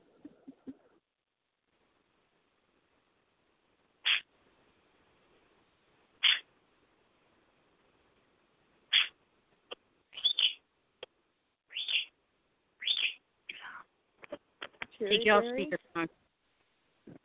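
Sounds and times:
pet bird screeching: 0:04.0 - 0:04.2, 0:06.2 - 0:06.4, 0:08.9 - 0:09.1, 0:10.2 - 0:10.6, 0:11.7 - 0:12.1, 0:12.8 - 0:13.2
pet bird chirping: 0:04.0 - 0:04.3, 0:06.2 - 0:06.5, 0:08.9 - 0:10.7, 0:11.7 - 0:12.2, 0:12.8 - 0:13.7
speech: 0:15.0 - 0:16.2.

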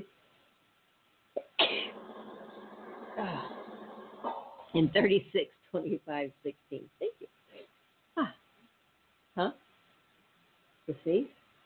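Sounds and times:
person sneezing: 0:01.4 - 0:02.0
breathy sound: 0:01.7 - 0:04.7
speech: 0:03.2 - 0:03.5, 0:04.7 - 0:07.2, 0:09.4 - 0:09.6, 0:10.9 - 0:11.4.

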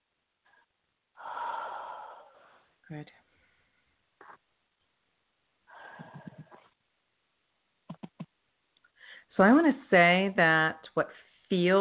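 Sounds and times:
person breathing during a guided heart-centered exercise: 0:01.2 - 0:04.0, 0:05.7 - 0:06.7, 0:08.9 - 0:09.3
speech: 0:02.9 - 0:03.3, 0:09.4 - 0:11.7.

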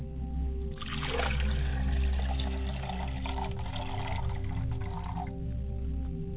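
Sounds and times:
low constant hum: 0:00.0 - 0:06.3
water poured in a splashing stream to wash face and hands: 0:00.8 - 0:05.3.

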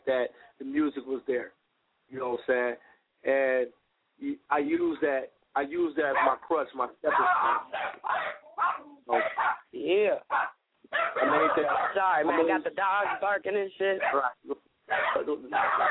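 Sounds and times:
speech: 0:00.1 - 0:08.4, 0:09.1 - 0:15.9
dogs barking with yips and whiny cries: 0:06.0 - 0:06.5, 0:07.1 - 0:09.7, 0:10.3 - 0:13.4, 0:14.0 - 0:15.9.

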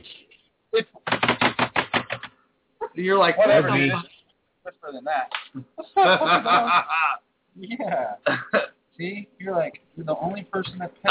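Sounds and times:
rapid typing on a keyboard: 0:01.0 - 0:02.3
laughter: 0:02.8 - 0:04.0, 0:05.8 - 0:11.0
speech: 0:03.0 - 0:04.1, 0:04.9 - 0:11.0.

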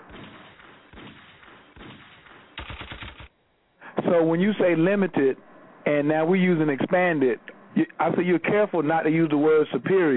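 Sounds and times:
booming single gunshots with echo: 0:00.0 - 0:03.3
rapid burst of automatic gunfire: 0:00.1 - 0:03.3
speech: 0:04.1 - 0:10.1.

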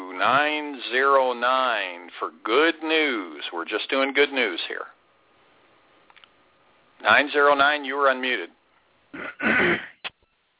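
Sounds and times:
speech: 0:00.2 - 0:05.0, 0:07.0 - 0:09.9
person clearing throat over a phone line: 0:09.1 - 0:10.1.

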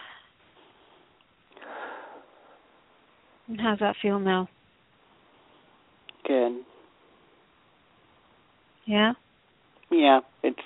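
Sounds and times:
person drawing a deep breath in through the nose: 0:00.0 - 0:02.7
speech: 0:03.5 - 0:04.6, 0:08.9 - 0:09.2, 0:09.9 - 0:10.3.

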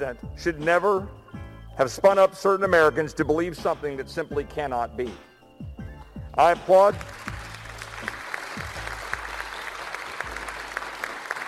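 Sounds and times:
speech: 0:00.0 - 0:05.7, 0:06.4 - 0:07.3
crowd applause: 0:07.0 - 0:11.4.

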